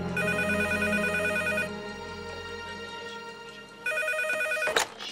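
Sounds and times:
telephone ringing with electronic trilling for an incoming call from a prison: 0.2 - 1.8, 3.9 - 4.9.

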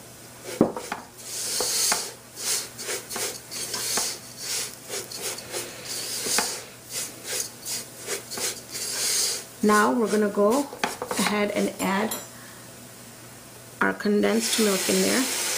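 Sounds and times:
utensil scraping a cooking pot while stirring in coconut: 0.4 - 11.8
speech: 9.6 - 12.2, 13.8 - 15.4.

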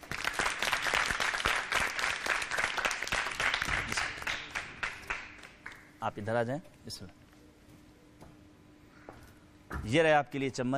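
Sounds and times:
audience applause welcoming a team called up for a contest game: 0.0 - 5.9
speech: 6.0 - 7.2, 9.8 - 10.7.

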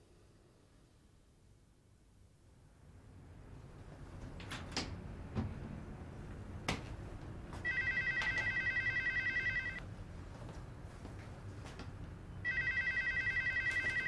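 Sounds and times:
low hum: 0.0 - 14.0
telephone ringing with rapid trilling: 7.6 - 9.8, 12.4 - 14.0.

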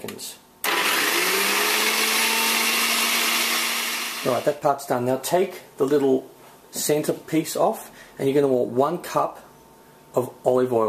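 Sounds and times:
speech: 0.2 - 0.4, 4.2 - 9.4, 10.1 - 10.8
blender blending salad dressing ingredients with dry mustard powder: 0.6 - 4.5.

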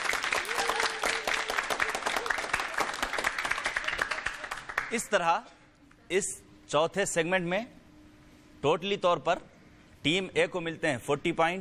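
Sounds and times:
studio audience applauding at a quiz show: 0.0 - 5.1
speech: 4.9 - 7.8, 8.6 - 11.5.

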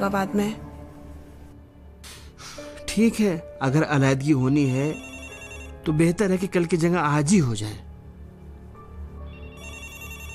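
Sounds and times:
speech: 0.0 - 0.6, 3.0 - 5.1, 5.8 - 7.8
telephone ringing with an electronic ringtone: 4.5 - 6.0, 9.3 - 10.3.

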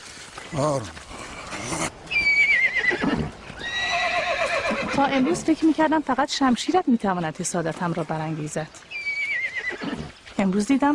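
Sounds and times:
speech: 0.5 - 2.0, 5.0 - 8.9, 10.4 - 10.9
young colt whinnying: 1.2 - 5.6, 8.9 - 10.2.

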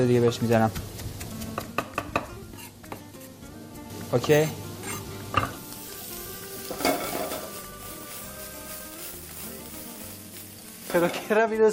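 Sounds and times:
speech: 0.0 - 0.9, 4.1 - 4.6, 10.9 - 11.7
onion sizzling as it fries in a pan: 0.0 - 11.7
stirring strokes scraping in a pan: 2.5 - 3.3, 6.6 - 7.6.

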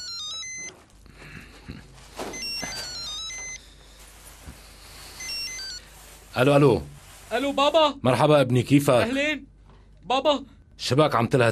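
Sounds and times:
telephone ringing electronically after a call is placed: 0.0 - 0.8, 2.3 - 3.8, 5.0 - 5.9
speech: 6.4 - 11.4.

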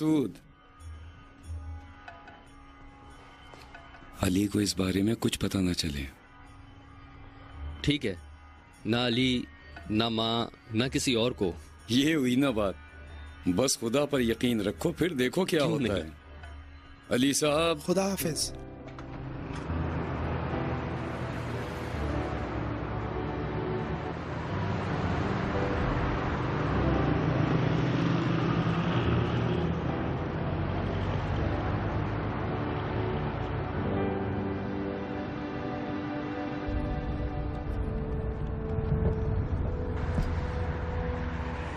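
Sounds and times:
speech: 0.0 - 0.5, 4.2 - 6.2, 7.8 - 12.8, 13.4 - 16.2, 17.1 - 18.7
car engine and road noise driving through traffic: 18.8 - 41.7.

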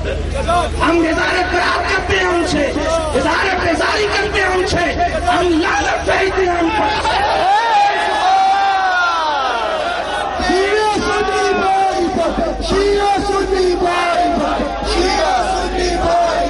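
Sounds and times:
speech: 0.1 - 7.6
large crowd chanting religious slogans in unison: 6.3 - 16.4.

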